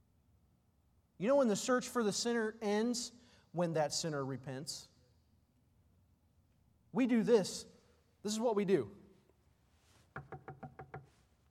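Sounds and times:
speech: 0:01.2 - 0:04.9, 0:07.0 - 0:09.0
knocks on a wooden house door: 0:10.1 - 0:11.2.

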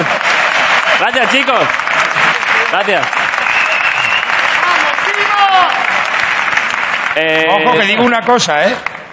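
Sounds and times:
audience applause: 0:00.0 - 0:09.1
speech: 0:01.1 - 0:02.0, 0:02.7 - 0:03.3, 0:07.2 - 0:08.9.

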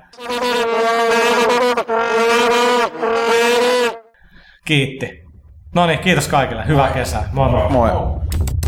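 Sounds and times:
loud buzzing vuvuzela horns droning: 0:00.0 - 0:04.2
speech: 0:00.1 - 0:02.5, 0:04.7 - 0:05.2, 0:05.8 - 0:08.5.

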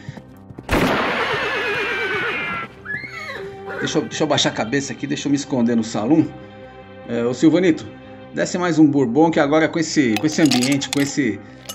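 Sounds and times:
faint steady music: 0:00.0 - 0:11.7
frightened horse whinnying: 0:00.9 - 0:04.1
speech: 0:03.8 - 0:06.5, 0:07.1 - 0:11.7.

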